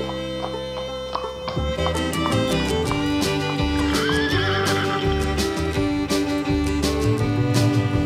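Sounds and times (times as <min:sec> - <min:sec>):
bright continuous music: 0:00.0 - 0:08.0
horse hooves galloping: 0:00.0 - 0:08.0
horse whinny: 0:03.8 - 0:05.4.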